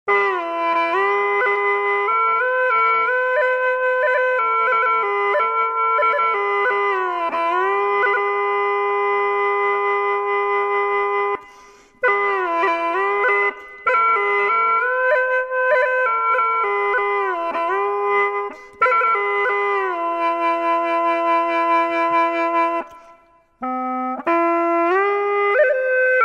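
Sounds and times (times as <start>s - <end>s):
hulusi playing: 0.1s - 26.2s.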